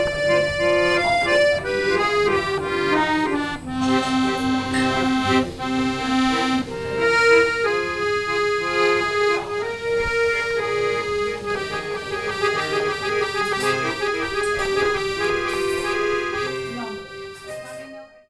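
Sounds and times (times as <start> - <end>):
accordion: 0.0 - 18.2.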